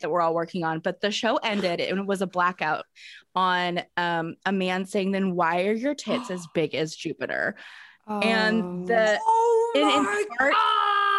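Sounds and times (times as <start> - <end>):
speech: 0.0 - 10.8
person screaming in frustration: 9.1 - 11.1.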